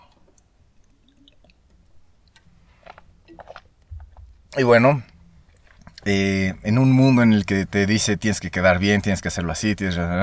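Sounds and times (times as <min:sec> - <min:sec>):
quiet sipping and swallowing of water with mouth clicks and gulps: 0:00.0 - 0:06.2
speech: 0:04.6 - 0:05.1, 0:06.1 - 0:10.2.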